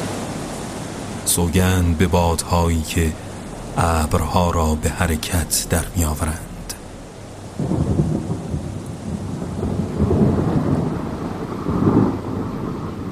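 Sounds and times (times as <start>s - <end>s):
deep rolling thunder: 0.0s - 13.1s
steady heavy rain: 0.0s - 13.1s
speech: 1.3s - 6.5s.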